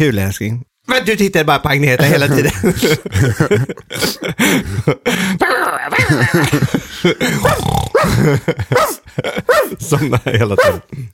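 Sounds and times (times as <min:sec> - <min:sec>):
speech: 0:00.0 - 0:11.1
laughter: 0:02.0 - 0:11.0
dog growling and barking: 0:07.4 - 0:09.8, 0:10.6 - 0:10.9.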